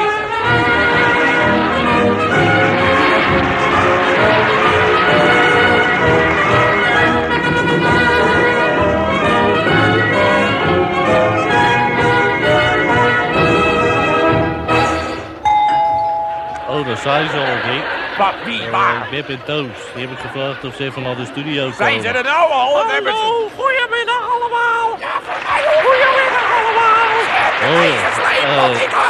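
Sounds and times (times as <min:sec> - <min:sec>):
lively radio show theme tune with bright bell-like chiming notes: 0:00.4 - 0:18.6
laughter: 0:01.1 - 0:10.7, 0:16.7 - 0:23.5, 0:24.4 - 0:29.0
speech: 0:18.2 - 0:29.0.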